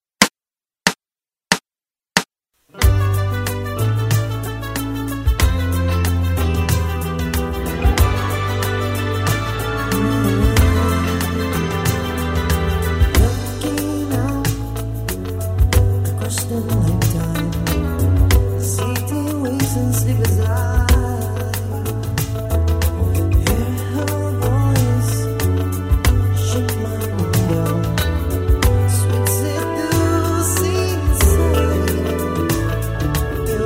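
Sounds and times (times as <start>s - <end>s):
band rehearsing: 2.8s - 33.6s.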